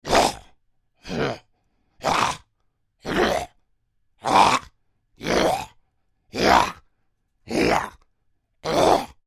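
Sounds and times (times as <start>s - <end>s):
troll creature grunts: 0.0s - 3.6s, 4.2s - 6.8s, 7.5s - 8.0s, 8.6s - 9.2s.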